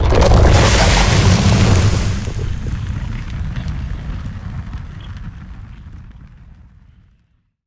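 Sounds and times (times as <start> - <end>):
flame puddle burning: 0.0 - 6.9
mortar cannon firing: 0.1 - 5.8.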